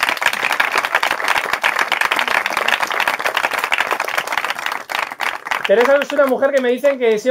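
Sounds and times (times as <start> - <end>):
large audience applauding: 0.0 - 7.2
speech: 5.7 - 7.2.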